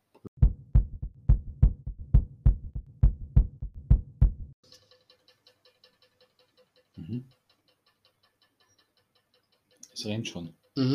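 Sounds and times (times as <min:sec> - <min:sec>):
heartbeat thumping in a lub-dub rhythm: 0:00.4 - 0:04.6
speech: 0:07.1 - 0:07.4, 0:10.0 - 0:10.9.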